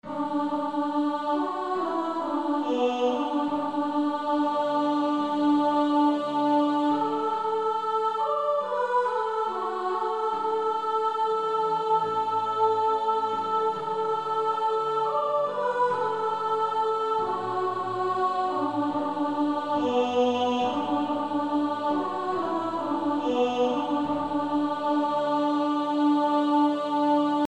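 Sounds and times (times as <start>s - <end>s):
male choir first tenor section singing: 0.1s - 27.4s.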